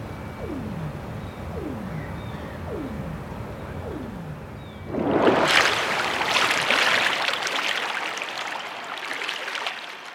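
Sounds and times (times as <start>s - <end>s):
low sweeping underwater pulses: 0.0s - 5.8s
steady underwater mechanical hum from shipping and construction: 0.0s - 10.1s.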